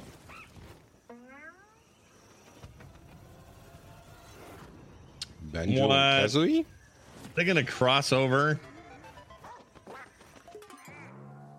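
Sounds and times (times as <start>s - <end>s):
speech: 5.5s - 6.8s, 7.4s - 8.7s
Nintendo video game duck quacks: 8.9s - 11.4s.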